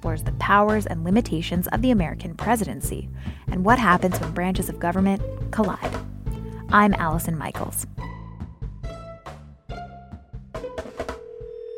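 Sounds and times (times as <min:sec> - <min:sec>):
speech: 0:00.1 - 0:06.0, 0:06.7 - 0:08.0
electronic telephone tones of a call being placed: 0:11.2 - 0:11.7.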